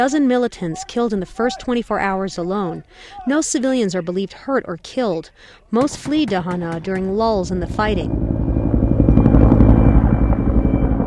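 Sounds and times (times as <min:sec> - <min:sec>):
speech: 0:00.0 - 0:08.3
Cobra military helicopter flying overhead over Dahana: 0:07.0 - 0:11.0.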